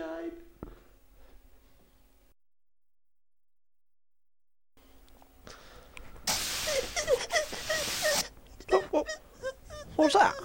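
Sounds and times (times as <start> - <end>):
steady rushing hiss: 6.2 - 8.3
high-pitched whimpers: 6.7 - 10.4
speech: 10.0 - 10.4.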